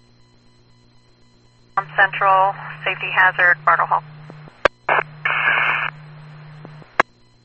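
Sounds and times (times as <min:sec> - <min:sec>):
low steady hum: 0:01.7 - 0:07.0
speech: 0:01.8 - 0:04.1
harsh bursts of radio static: 0:01.8 - 0:07.0
radio squelch click: 0:01.8 - 0:07.0.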